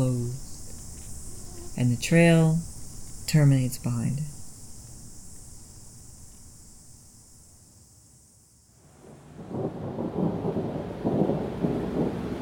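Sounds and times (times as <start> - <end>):
speech: 1.8 - 2.7, 3.3 - 4.4
heavy steady rain: 8.8 - 12.4.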